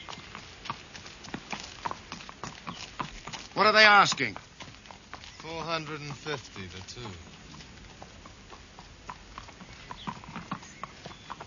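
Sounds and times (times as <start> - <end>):
faint noise: 0.0 - 11.4
horse hooves clip-clopping: 0.0 - 11.4
speech: 3.6 - 4.4, 5.5 - 7.3.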